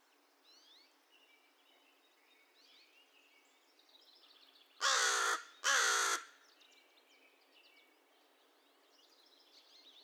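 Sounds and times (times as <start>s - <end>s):
American crow giving harsh buzzy caws: 4.8s - 6.3s.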